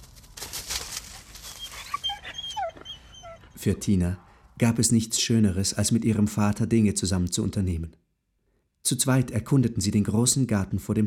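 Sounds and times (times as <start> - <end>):
dog whimpering and whining: 1.4 - 3.6
speech: 3.6 - 8.0, 8.9 - 11.0.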